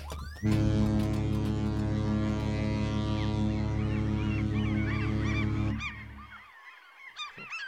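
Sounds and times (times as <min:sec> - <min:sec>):
long loud ship's horn blast: 0:00.4 - 0:06.3
seagulls crying and squawking: 0:02.8 - 0:07.6.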